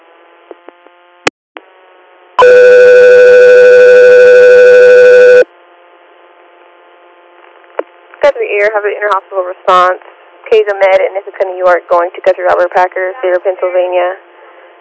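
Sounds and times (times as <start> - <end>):
dispatch alert tone for an air medical crew: 2.4 - 5.4
speech: 8.6 - 14.3.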